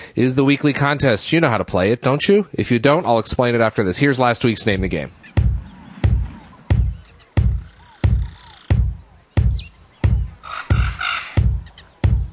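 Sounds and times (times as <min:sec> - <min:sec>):
speech: 0:00.2 - 0:05.5
bird chirps and calls twittering: 0:04.6 - 0:12.3
loud steady booming beat of video game music: 0:04.7 - 0:12.3.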